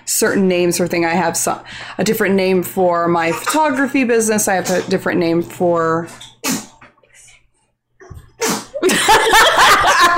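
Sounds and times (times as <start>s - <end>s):
speech: 0.1s - 6.3s
five-month-old baby sneezing: 6.4s - 6.8s, 8.4s - 8.8s
laughter: 8.8s - 10.1s.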